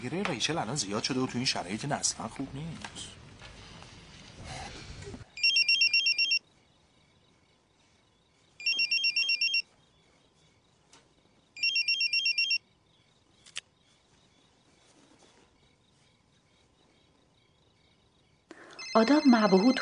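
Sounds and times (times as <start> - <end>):
speech: 0.0 - 3.2, 19.0 - 19.8
telephone ringing in electronic trilling bursts: 5.4 - 6.4, 8.6 - 9.6, 11.6 - 12.6, 18.7 - 19.8.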